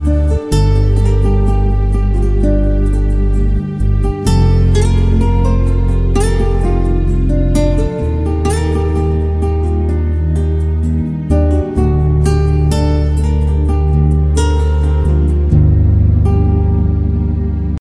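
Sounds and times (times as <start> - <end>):
soft instrumental ringtone music: 0.0 - 17.7.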